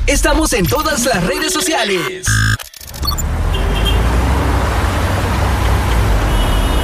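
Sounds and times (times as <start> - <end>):
speech: 0.1 - 3.3
dense road traffic with vehicles passing: 3.0 - 6.8.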